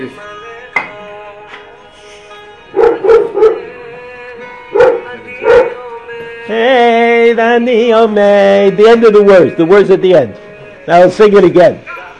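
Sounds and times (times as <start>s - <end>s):
speech: 0.0s - 0.3s, 6.5s - 11.9s
steady music with sustained tones: 0.0s - 12.1s
dog barking: 2.8s - 3.7s, 4.7s - 5.8s.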